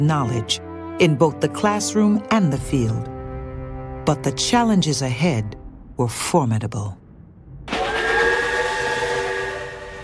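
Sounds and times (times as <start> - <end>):
speech: 0.0 - 3.1, 4.0 - 7.0
steam train whistle blowing as the train departs Iowa: 7.7 - 10.0.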